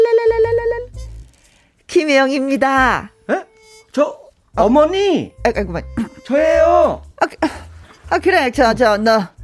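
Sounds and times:
warbling phone ringback tone during outgoing call: 0.1 - 1.1
speech: 2.2 - 7.6, 8.1 - 9.4.

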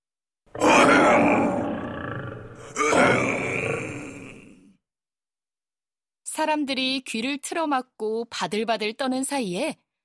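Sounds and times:
tiger roaring: 0.5 - 4.6
speech: 6.4 - 9.8.

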